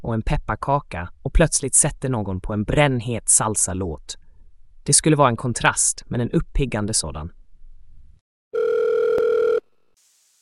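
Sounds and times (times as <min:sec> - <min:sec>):
speech: 0:00.1 - 0:04.2, 0:04.8 - 0:07.4
electronic telephone ring tone of an incoming call: 0:08.6 - 0:09.6.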